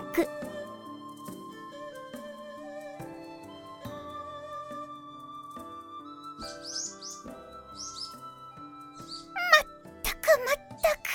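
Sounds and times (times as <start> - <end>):
melodic music: 0.0 - 11.1
speech: 0.2 - 0.5
sparrow chirping: 6.5 - 8.2, 9.0 - 9.6.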